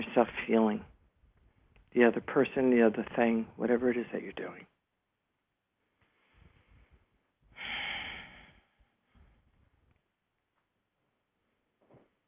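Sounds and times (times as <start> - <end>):
speech: 0.2 - 0.9, 2.0 - 4.7
slow deep breathing during a relaxation exercise: 6.0 - 9.6.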